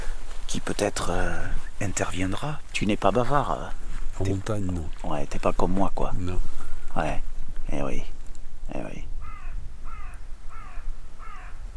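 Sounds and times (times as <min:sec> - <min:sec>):
speech: 0:00.5 - 0:09.1
crow cawing: 0:09.2 - 0:11.7.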